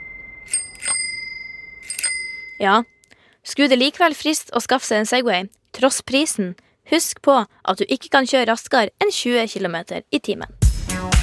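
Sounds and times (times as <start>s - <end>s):
bicycle bell ringing: 0.0s - 3.0s
speech: 2.6s - 10.6s.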